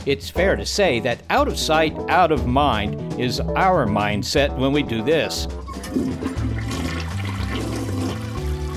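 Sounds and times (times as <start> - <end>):
speech: 0.1 - 6.5
toilet flushing with rushing water and gurgling: 5.6 - 8.7.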